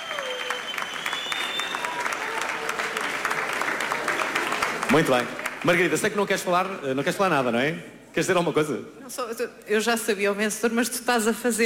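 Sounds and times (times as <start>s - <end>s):
faint whistles: 0.0s - 2.0s
faint cheers: 0.0s - 4.4s
audience applause from a sizable crowd: 0.0s - 6.4s
speech: 4.9s - 11.6s.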